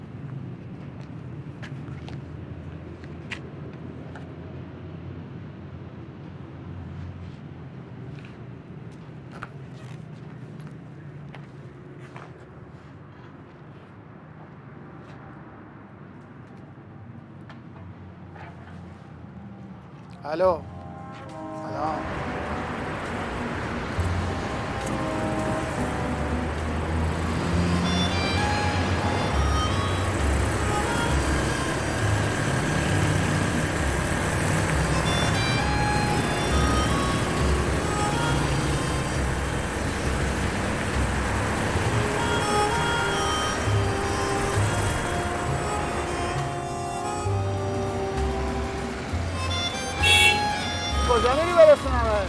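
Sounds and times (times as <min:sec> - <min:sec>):
road noise: 0:00.0 - 0:52.2
speech: 0:20.2 - 0:20.7
car engine running: 0:22.8 - 0:46.6.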